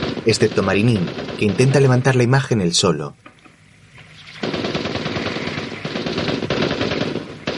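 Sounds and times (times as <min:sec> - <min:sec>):
rapid automatic gunfire: 0:00.0 - 0:02.0, 0:04.4 - 0:07.5
speech: 0:00.2 - 0:03.3.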